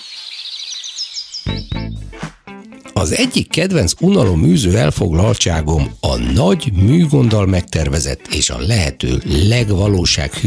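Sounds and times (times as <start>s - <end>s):
nightingale singing chirps trills and warbles: 0.0s - 2.2s
speech: 3.0s - 10.4s.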